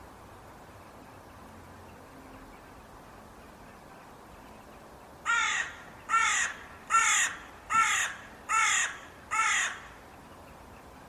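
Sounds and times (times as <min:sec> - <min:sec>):
steady background hiss: 0:00.0 - 0:11.0
bird giving harsh nasal caws: 0:05.2 - 0:10.0.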